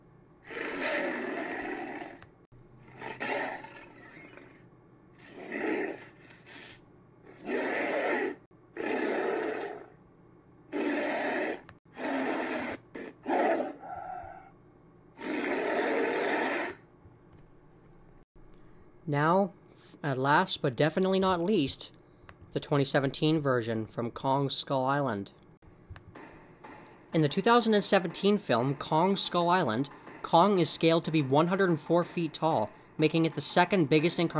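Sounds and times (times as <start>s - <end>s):
giant ape roar built from lion, tiger, leopard, horse, walrus and gorilla sounds: 0.5s - 2.2s, 2.9s - 4.5s, 7.4s - 9.9s, 10.7s - 14.5s, 15.2s - 16.8s
speech: 19.1s - 25.4s, 27.1s - 34.3s.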